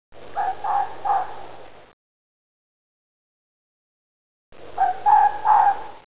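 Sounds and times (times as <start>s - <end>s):
fox mating call: 0.4s - 1.4s, 4.8s - 6.0s.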